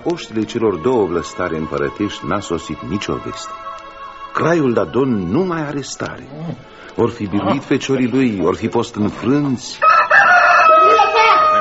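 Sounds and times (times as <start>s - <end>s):
speech: 0.0s - 3.7s, 4.4s - 10.0s
rooster crowing: 9.8s - 11.5s.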